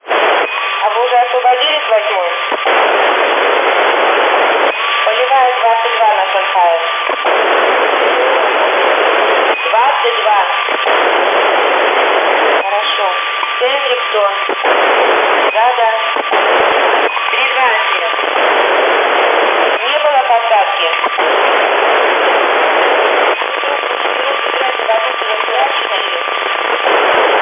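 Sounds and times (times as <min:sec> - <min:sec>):
narrowband FM radio static: 0:00.0 - 0:27.4.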